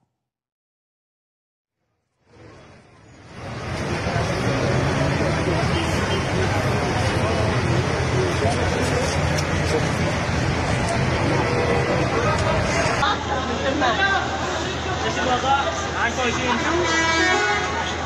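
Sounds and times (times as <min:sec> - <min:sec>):
hubbub of voices: 0:02.1 - 0:18.0
cars moving through floodwater in city streets after heavy rain: 0:02.2 - 0:18.0
car horns tooting: 0:05.6 - 0:06.5, 0:16.5 - 0:18.0.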